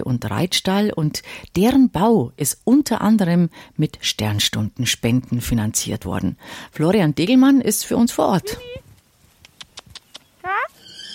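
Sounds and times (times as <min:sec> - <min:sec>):
speech: 0:00.0 - 0:08.8
horse whinny at a paddock: 0:10.5 - 0:11.1.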